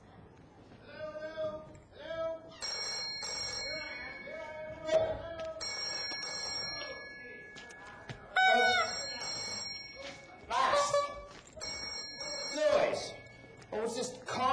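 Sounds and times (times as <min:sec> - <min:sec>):
city hall mobile phone ringing with an electronic ringtone: 0:02.6 - 0:13.8.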